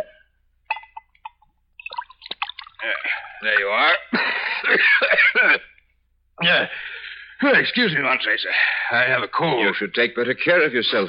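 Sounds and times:
faint glassy ringing: 0:00.0 - 0:01.4
sherry being poured into a glass: 0:01.3 - 0:02.9
speech: 0:02.8 - 0:05.7, 0:06.4 - 0:11.0.

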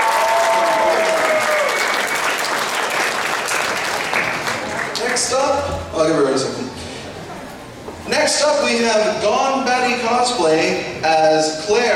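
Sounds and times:
crowd applauding: 0:00.0 - 0:05.3
speech: 0:06.0 - 0:06.6, 0:08.4 - 0:11.9.

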